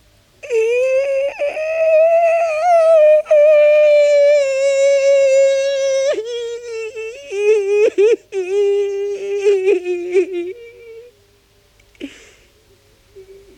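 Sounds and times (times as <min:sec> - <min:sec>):
man sobbing with short catches of breath: 0:00.4 - 0:11.1
man's long wailing cry: 0:00.4 - 0:11.1.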